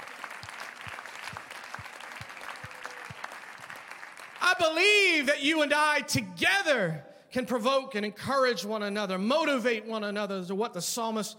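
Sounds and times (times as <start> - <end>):
audience applauding: 0.0 - 4.9
loud regular claps: 0.0 - 5.1
speech: 4.4 - 11.3.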